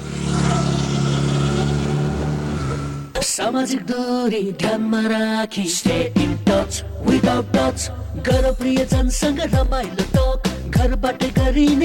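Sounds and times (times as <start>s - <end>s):
Hero Xpulse 200 dual-purpose motorcycle 18.4 hp engine running: 0.0s - 3.1s
speech: 3.4s - 11.8s.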